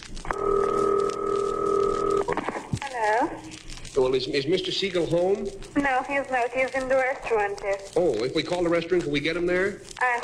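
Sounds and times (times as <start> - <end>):
telephone line tone humming: 0.3 - 2.3
speech: 4.0 - 10.2.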